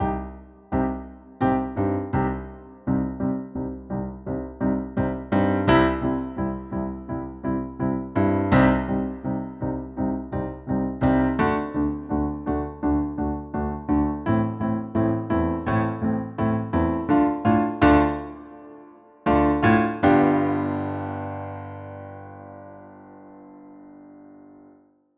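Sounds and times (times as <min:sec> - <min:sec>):
opening duet chords: 0:00.0 - 0:24.0.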